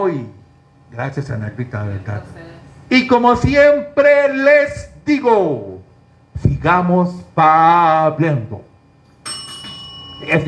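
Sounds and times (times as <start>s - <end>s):
speech: 0.0s - 5.7s, 6.4s - 8.7s, 10.2s - 10.4s
single bell ringing with a bright sustained shimmer: 9.1s - 10.4s.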